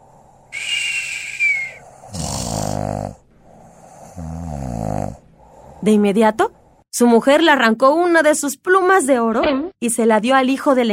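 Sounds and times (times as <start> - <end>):
dragon snoring with whistling breath and rattling snores: 0.6 - 5.9
speech: 5.8 - 10.9.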